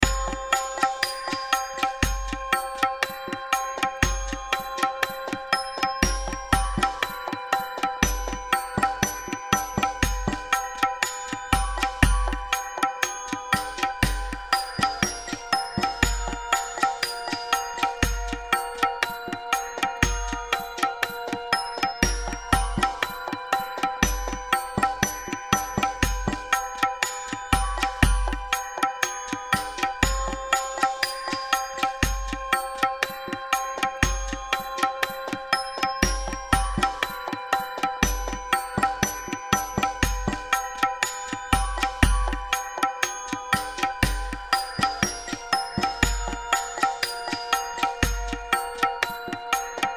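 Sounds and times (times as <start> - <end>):
drums: 0.0 - 49.9
tribal tabla percussion loop: 0.0 - 49.9.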